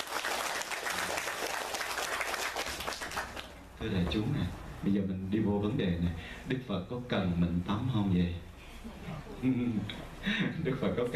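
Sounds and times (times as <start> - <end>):
audience applause at a ceremony: 0.0 - 3.5
speech: 3.8 - 11.1.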